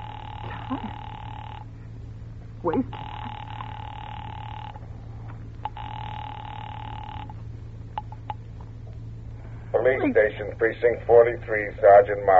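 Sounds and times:
telephone ringing as a call is put through to a police department: 0.0s - 1.8s, 2.9s - 4.9s, 5.6s - 7.4s
speech: 0.7s - 1.1s, 2.6s - 3.1s, 9.8s - 12.3s.

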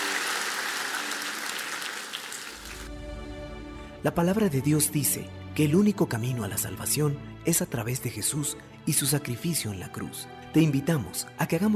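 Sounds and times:
audience applause: 0.0s - 2.9s
speech: 4.0s - 11.7s.

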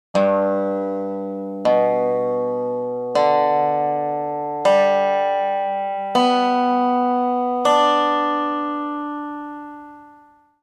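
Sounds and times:
dobro strings plucked for a tuning check: 0.2s - 10.1s.

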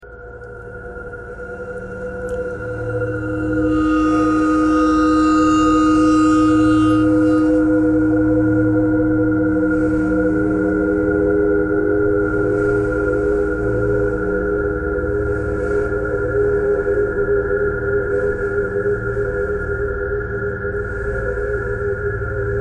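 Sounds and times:
bowed ice: 0.1s - 22.5s
bowed metal: 0.7s - 13.8s.

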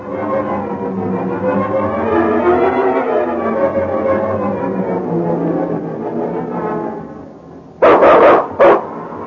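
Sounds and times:
long wavering tonal cry: 0.0s - 7.4s
dog barking loudly: 7.8s - 8.9s.

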